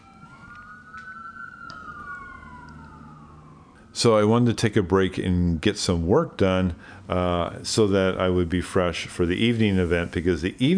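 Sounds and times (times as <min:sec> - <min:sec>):
emergency vehicle siren wailing outside: 0:00.0 - 0:05.2
low traffic rumble: 0:00.0 - 0:10.7
speech: 0:04.0 - 0:10.7.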